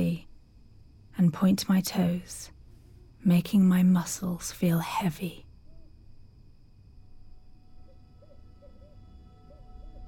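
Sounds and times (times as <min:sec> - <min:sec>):
speech: 0:01.2 - 0:02.6, 0:03.2 - 0:05.4
owl hooting: 0:07.7 - 0:10.0.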